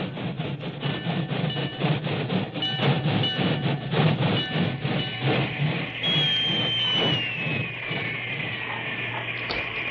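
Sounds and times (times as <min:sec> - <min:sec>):
work train wheels clacking on the main track: 0:00.0 - 0:09.8
long high train engine whistle: 0:06.0 - 0:08.0.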